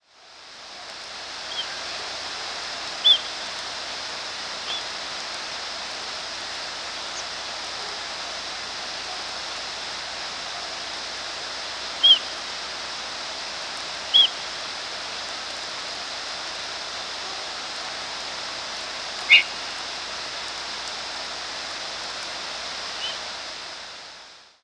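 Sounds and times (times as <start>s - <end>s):
steady hiss of background noise: 0.0s - 24.6s
rose-breasted grosbeak giving sharp squeaky call notes: 19.3s - 19.5s.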